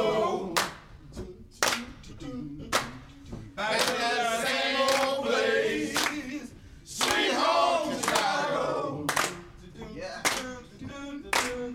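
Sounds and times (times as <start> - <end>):
faint music: 0.0 - 11.7
hands clapping along to a song: 0.6 - 1.0, 1.6 - 2.1, 2.7 - 3.2, 3.8 - 4.2, 4.8 - 5.3, 5.9 - 6.3, 7.0 - 8.5, 9.1 - 9.5, 10.2 - 10.6, 11.3 - 11.7.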